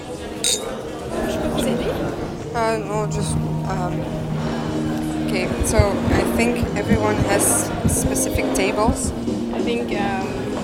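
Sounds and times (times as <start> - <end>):
murmur: 0.0 - 10.6
champagne glasses clinking in a toast: 0.4 - 0.9
speech: 2.6 - 4.3, 5.3 - 10.4.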